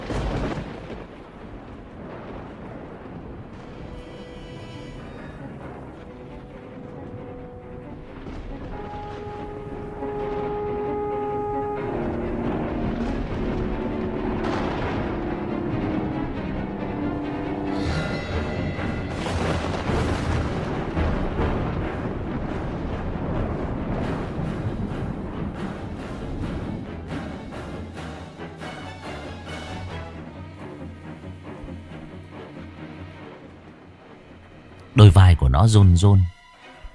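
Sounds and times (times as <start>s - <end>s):
booming thunder from a lightning strike in a storm: 0.0s - 27.9s
sustained ominous music: 3.5s - 35.0s
speech: 35.0s - 36.4s.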